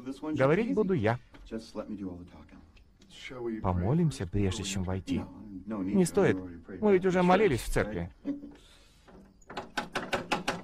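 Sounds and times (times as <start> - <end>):
speech: 0.0 - 8.7
knocking on a house door: 9.5 - 10.6.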